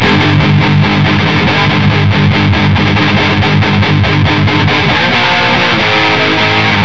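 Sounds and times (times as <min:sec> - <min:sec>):
guitar: 0:00.0 - 0:06.8.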